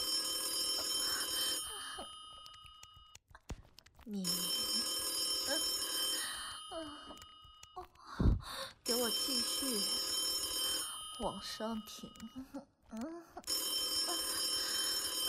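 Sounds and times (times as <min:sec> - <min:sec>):
telephone bell ringing: 0:00.0 - 0:03.2, 0:04.2 - 0:07.8, 0:08.9 - 0:12.4, 0:13.5 - 0:15.2
breathy sounds: 0:00.5 - 0:02.8, 0:03.4 - 0:08.9, 0:12.2 - 0:15.2
person's voice: 0:04.0 - 0:04.9, 0:07.8 - 0:09.9, 0:11.2 - 0:13.4
speech: 0:04.1 - 0:04.5, 0:09.1 - 0:10.0, 0:11.2 - 0:13.1.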